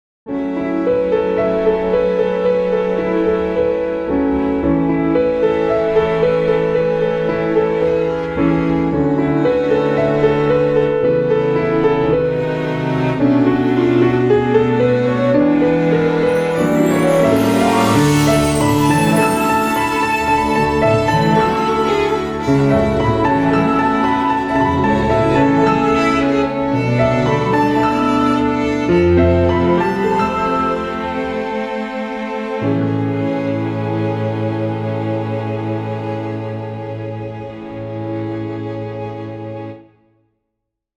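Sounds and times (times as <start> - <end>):
piano in A in 4/4: 0.3 - 40.0.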